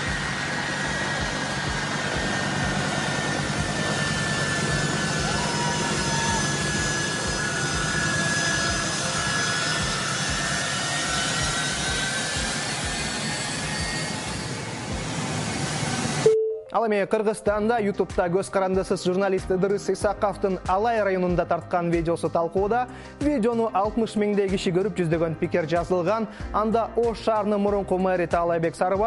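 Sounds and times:
jet airplane taxiing with people clinging to it: 0.0 - 16.3
speech: 16.7 - 29.0.

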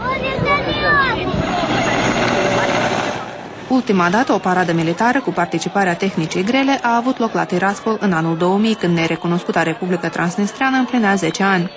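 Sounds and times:
helicopters flying overhead with rotor roar: 0.0 - 5.2
faint voices murmuring: 0.0 - 11.7
speech: 3.7 - 11.7.

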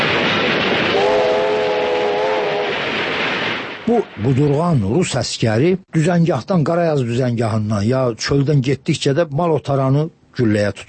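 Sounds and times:
military train with loaded wagons rumbling: 0.0 - 2.9
military train horn or whistle blast: 0.9 - 2.6
speech: 3.9 - 10.8.

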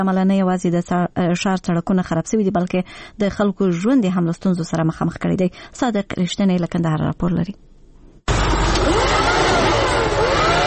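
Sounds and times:
speech: 0.0 - 7.7
vacuum cleaner cleaning dust and soil from a shop in Kandahar: 8.3 - 10.6.

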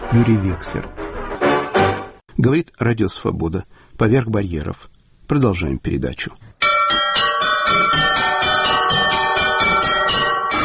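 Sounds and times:
speech: 0.1 - 1.0, 2.4 - 6.5
several church bells ringing in a clanging peal: 6.6 - 10.6.

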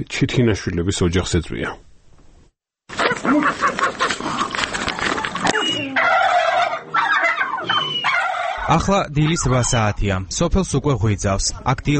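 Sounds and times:
speech: 0.0 - 1.9, 8.7 - 11.9
turkey gobbling in a village farmyard in Lagodekhi municipality, Georgia: 2.9 - 9.9.

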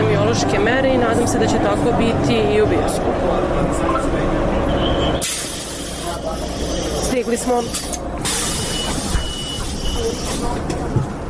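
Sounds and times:
city bus engine rumble: 0.0 - 11.2
speech: 0.3 - 5.6, 6.3 - 8.5, 10.0 - 11.1
pneumatic hiss of bus air brakes or doors releasing: 5.2 - 10.4.

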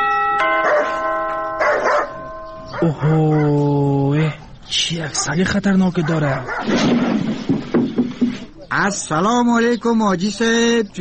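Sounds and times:
front gate doorbell electronic chime: 0.0 - 3.2
dog barking: 0.6 - 1.0, 1.6 - 3.6, 6.0 - 6.8
speech: 2.8 - 7.9, 8.7 - 10.9.

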